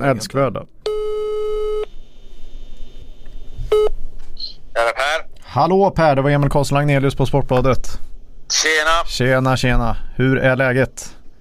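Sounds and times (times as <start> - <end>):
speech: 0.0 - 0.8, 5.5 - 11.2
telephone ringback tone while placing a call: 0.9 - 1.9.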